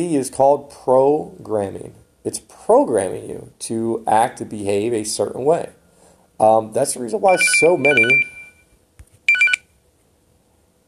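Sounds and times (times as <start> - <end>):
speech: 0.0 - 5.8, 6.4 - 8.4
phone ringing with electronic chirping tones: 7.3 - 8.7, 9.3 - 9.6.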